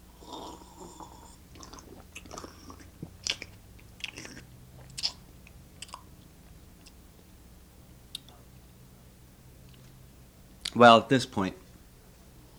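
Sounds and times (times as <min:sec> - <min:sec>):
slurping wine during tasting: 0:00.2 - 0:05.2
mouth smacks and clicks: 0:01.5 - 0:07.3, 0:08.1 - 0:08.4
speech: 0:10.8 - 0:11.6.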